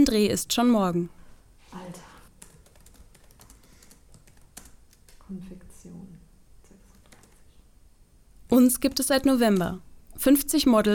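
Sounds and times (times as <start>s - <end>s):
speech: 0.0s - 1.2s, 5.3s - 6.0s, 8.5s - 10.9s
soft hum: 0.0s - 10.9s
typing on a white laptop keyboard on a living room table: 2.4s - 5.2s, 6.9s - 7.4s.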